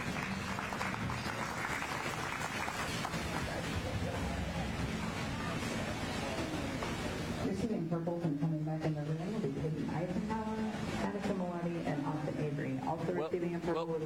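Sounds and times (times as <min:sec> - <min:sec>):
crowd applauding in a show ring: 0:00.0 - 0:05.3
murmur of voices: 0:00.0 - 0:14.0
speech: 0:08.0 - 0:09.2.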